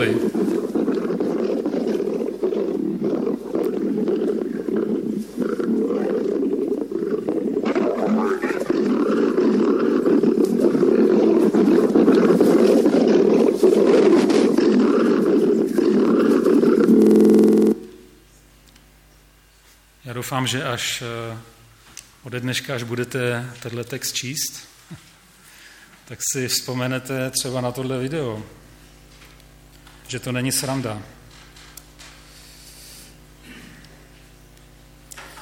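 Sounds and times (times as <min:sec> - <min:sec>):
enraged lions roaring and snarling while fighting: 0:00.0 - 0:17.8
speech: 0:20.3 - 0:21.5, 0:22.2 - 0:25.0, 0:26.1 - 0:28.6, 0:30.1 - 0:31.2.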